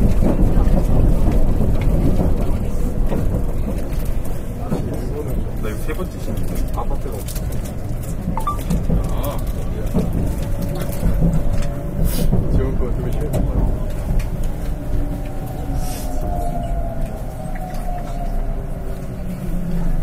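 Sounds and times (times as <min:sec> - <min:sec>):
faint rattles and clicks in express train cabin: 0:00.0 - 0:15.6
express train cabin rumble at speed: 0:00.0 - 0:20.0.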